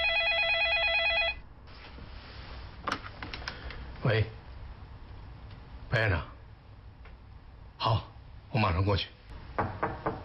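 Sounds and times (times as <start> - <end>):
telephone ringing with a warbling electronic tone: 0.0 - 1.4
faint noise: 0.0 - 10.2
speech: 4.0 - 4.4, 6.0 - 6.3, 8.8 - 9.2.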